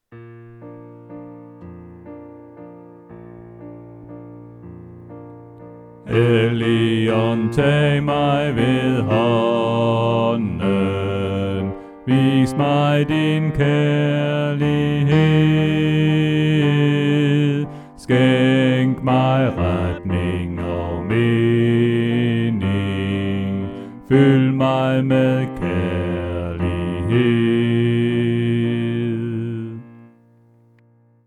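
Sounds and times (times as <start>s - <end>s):
bass part of a hymn: 0.1s - 31.2s.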